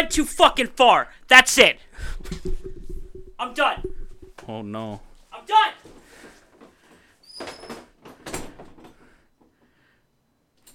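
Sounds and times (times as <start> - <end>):
speech: 0.0 - 2.7, 3.4 - 6.0
bathroom door opening and closing: 7.2 - 9.0.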